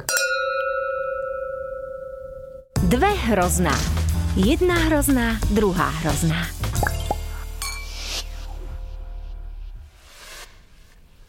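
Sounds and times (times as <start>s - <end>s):
wine glasses clinking in a toast: 0.0s - 2.7s, 6.8s - 8.0s
speech: 2.9s - 6.6s.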